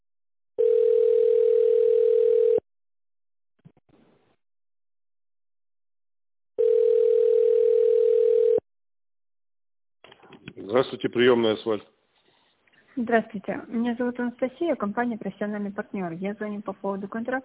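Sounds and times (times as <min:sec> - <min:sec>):
telephone tones while call is transferred to operator: 0:00.6 - 0:02.6, 0:06.6 - 0:08.6
speech: 0:11.0 - 0:12.0, 0:13.0 - 0:17.4.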